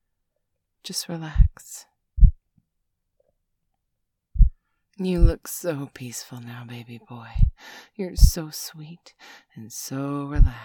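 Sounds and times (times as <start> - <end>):
speech: 0.8 - 1.9, 5.0 - 10.6
slow human heartbeat: 1.4 - 1.6, 2.2 - 2.4, 4.4 - 4.6, 5.2 - 5.4, 7.3 - 7.6, 10.4 - 10.6.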